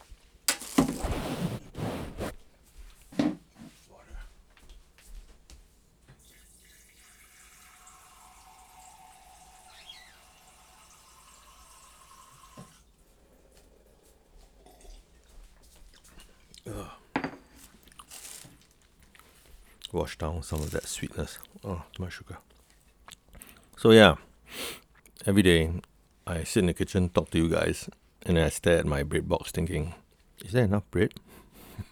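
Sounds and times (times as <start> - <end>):
kitchen tap running as a glass is filled: 0.5 - 1.0, 6.4 - 12.8
clattering and handling noises: 0.5 - 2.5, 3.1 - 3.9, 16.3 - 19.6, 20.4 - 21.6
speech: 20.0 - 22.5, 23.8 - 31.2.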